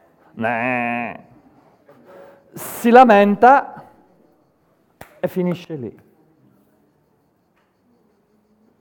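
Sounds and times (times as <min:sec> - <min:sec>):
human voice imitating a sheep's bleat: 0:00.3 - 0:01.3
speech: 0:00.4 - 0:01.3, 0:02.5 - 0:03.7, 0:05.2 - 0:06.0.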